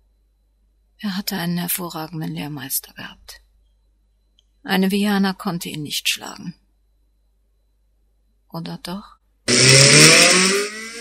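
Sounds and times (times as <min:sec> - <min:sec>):
speech: 0:01.0 - 0:03.4, 0:04.6 - 0:06.6, 0:08.5 - 0:10.6
powerful sports car engine revving: 0:09.5 - 0:10.9.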